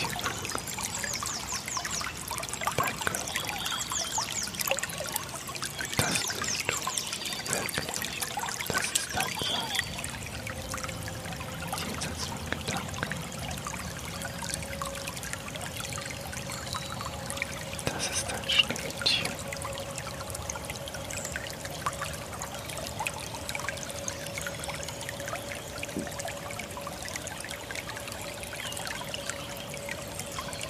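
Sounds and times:
water splashing and trickling: 0:00.0 - 0:30.6.

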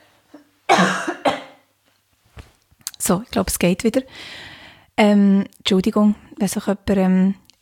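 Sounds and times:
person coughing after choking: 0:00.4 - 0:01.7
speech: 0:03.1 - 0:07.4.

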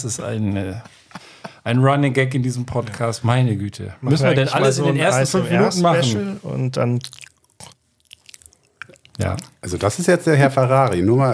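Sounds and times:
speech: 0:00.0 - 0:07.3, 0:09.2 - 0:11.3
wet lip smacking and chewing: 0:07.0 - 0:09.7.

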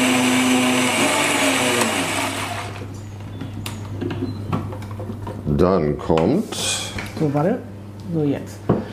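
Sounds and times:
kitchen blender mixing ingredients including crumbled yeast: 0:00.0 - 0:02.9
speech: 0:05.6 - 0:08.9.

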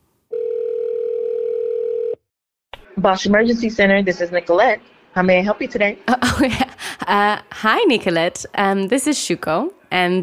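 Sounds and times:
telephone tone while dialing an American number: 0:00.3 - 0:02.2
speech: 0:03.0 - 0:10.2.

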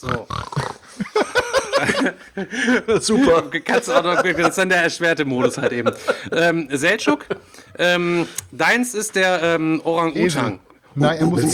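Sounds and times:
person imitating a pig's oink as a game buzzer: 0:00.0 - 0:00.8
speech: 0:00.0 - 0:01.1, 0:01.8 - 0:11.5
laughter: 0:00.6 - 0:08.7.

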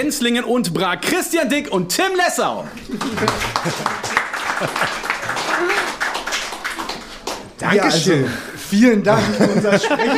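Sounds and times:
speech: 0:00.0 - 0:05.0, 0:07.6 - 0:10.1
laughter: 0:02.7 - 0:06.1, 0:09.0 - 0:10.1
audience applause at a mill festival: 0:02.8 - 0:07.6
crowd cheering: 0:02.8 - 0:07.7.

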